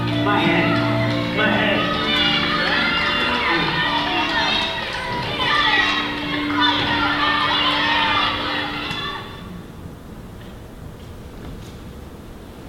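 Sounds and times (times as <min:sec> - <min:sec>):
crowd of children shouting and cheering someone on in a race: 0:00.1 - 0:09.5.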